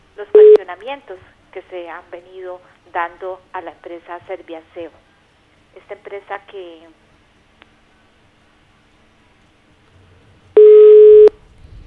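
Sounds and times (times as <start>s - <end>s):
telephone line tone after a dropped call: 0.4s - 0.6s, 10.6s - 11.8s
speech: 0.8s - 5.0s, 5.8s - 7.0s.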